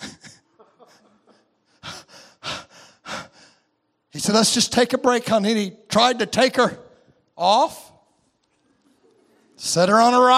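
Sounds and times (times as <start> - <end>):
person imitating a panting mule: 1.8 - 3.4
speech: 4.1 - 6.8, 7.4 - 7.8, 9.6 - 10.3.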